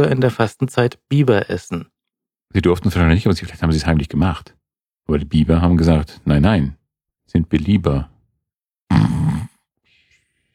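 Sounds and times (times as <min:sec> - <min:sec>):
speech: 0:00.0 - 0:01.9, 0:02.5 - 0:08.1
person imitating an inhaling snore into a very insensitive microphone: 0:08.9 - 0:09.7.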